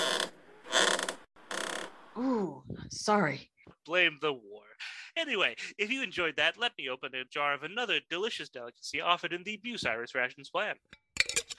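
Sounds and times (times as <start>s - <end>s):
stiff knee joint creaking: 0.0s - 2.0s
speech: 2.2s - 11.0s.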